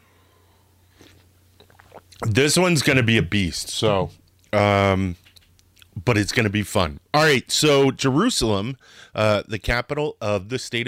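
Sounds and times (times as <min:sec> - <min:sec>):
faint steady hum: 0:00.0 - 0:10.8
slurping sips of coffee: 0:01.0 - 0:02.3
speech: 0:02.2 - 0:05.2, 0:06.0 - 0:10.8.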